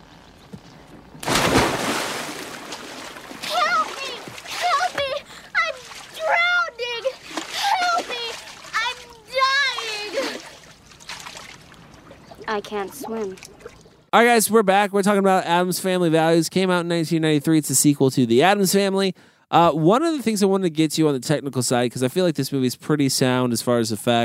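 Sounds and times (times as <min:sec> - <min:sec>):
splash of a child jumping into water: 0:01.2 - 0:04.9
children and adults talking: 0:03.4 - 0:10.4
speech: 0:12.6 - 0:13.5, 0:14.1 - 0:24.2.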